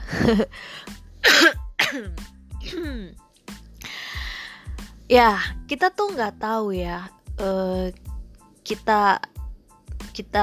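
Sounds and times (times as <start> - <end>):
speech: 0.2 - 3.2, 5.1 - 8.1, 8.7 - 9.3, 10.2 - 10.4
person coughing forcefully: 1.2 - 3.2.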